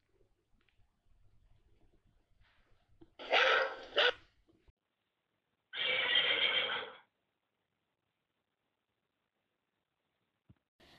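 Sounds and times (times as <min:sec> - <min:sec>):
dog barking at a horse at a paddock: 0:03.2 - 0:04.2
horse whinnying: 0:03.2 - 0:04.2, 0:05.8 - 0:07.0.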